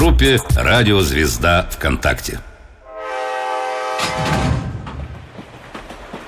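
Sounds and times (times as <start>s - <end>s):
speech: 0.1s - 2.5s
train horn: 2.8s - 4.6s
train rumbling: 3.6s - 6.2s
train wheels clattering on rails: 4.0s - 6.2s.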